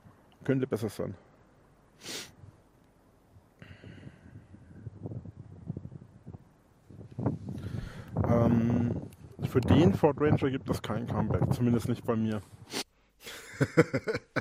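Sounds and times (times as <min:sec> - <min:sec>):
speech: 0:00.5 - 0:01.3, 0:09.6 - 0:12.8, 0:13.6 - 0:14.3
gusty wind outdoors at night buffeting the microphone: 0:03.7 - 0:12.7
laughter: 0:13.3 - 0:14.3.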